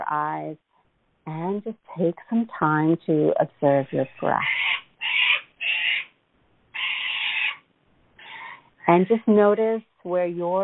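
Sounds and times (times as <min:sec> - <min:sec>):
speech: 0:00.1 - 0:04.6, 0:08.9 - 0:10.6
cockatoos screeching flying overhead in Australia: 0:04.4 - 0:07.6.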